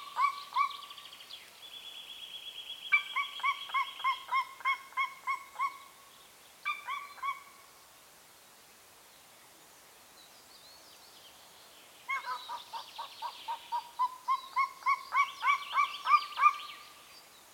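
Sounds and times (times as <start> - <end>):
Golden Eagle yelping calls in Bucovina, Romania: 0.0 - 1.0, 2.9 - 5.9, 6.7 - 7.6, 12.1 - 16.8
soft background hiss: 0.0 - 17.5.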